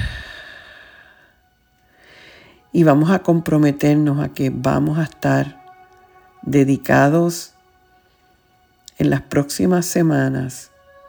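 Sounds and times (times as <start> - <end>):
slow exhale during a guided breathing exercise: 0.0 - 2.6
speech: 2.8 - 5.6, 6.4 - 7.5, 9.0 - 10.7.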